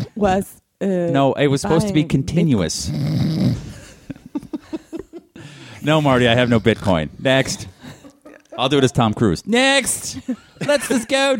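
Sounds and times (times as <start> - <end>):
speech: 0.2 - 3.7, 5.8 - 7.8, 8.6 - 11.3
person imitating snoring: 2.8 - 3.7
laughter: 3.6 - 9.2, 10.0 - 11.3.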